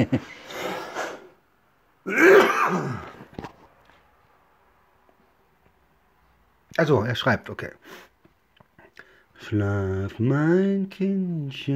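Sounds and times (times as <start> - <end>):
speech: 0.0 - 0.4, 2.0 - 3.1, 6.8 - 8.1, 9.4 - 11.7
person clearing throat and coughing: 2.1 - 3.2.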